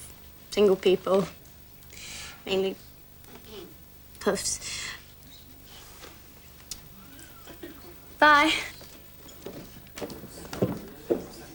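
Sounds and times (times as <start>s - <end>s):
faint room murmur: 0.0s - 11.5s
speech: 0.6s - 1.4s, 2.4s - 2.8s, 4.2s - 5.0s, 8.2s - 8.7s
retreating heel strikes on a hard floor: 8.8s - 11.5s.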